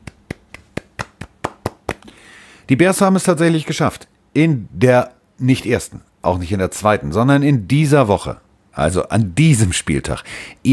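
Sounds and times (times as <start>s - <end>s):
short applause of hands clapping: 0.0s - 2.1s
speech: 2.7s - 10.7s.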